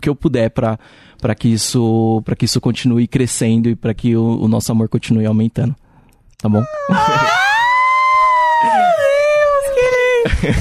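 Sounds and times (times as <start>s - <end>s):
speech: 0.0s - 5.8s, 6.4s - 7.4s
dog howling: 6.5s - 9.9s
laughter: 6.6s - 10.5s.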